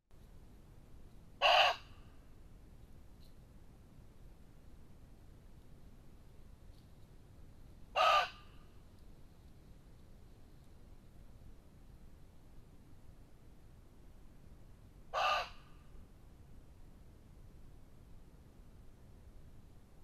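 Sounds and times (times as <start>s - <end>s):
muntjac barking: 1.4s - 2.0s, 7.9s - 8.6s, 15.1s - 15.7s.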